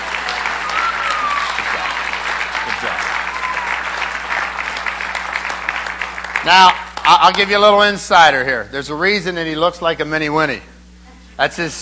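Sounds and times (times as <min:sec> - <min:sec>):
crowd applause: 0:00.0 - 0:07.5
speech: 0:06.4 - 0:10.7, 0:11.4 - 0:11.8.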